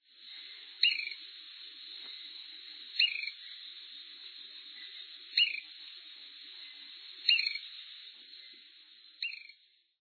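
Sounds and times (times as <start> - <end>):
ruby hummingbird: 0.0 - 10.0.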